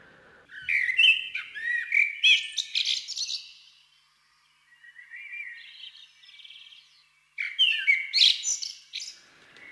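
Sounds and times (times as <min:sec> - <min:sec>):
common blackbird singing: 0:00.5 - 0:03.7, 0:04.7 - 0:09.7.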